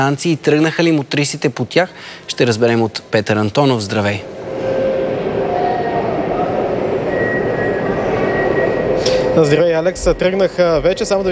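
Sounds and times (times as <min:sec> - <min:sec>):
speech: 0:00.0 - 0:04.4, 0:09.4 - 0:11.3
metro train rumbling at a Sofia metro station in Bulgaria: 0:03.0 - 0:11.3.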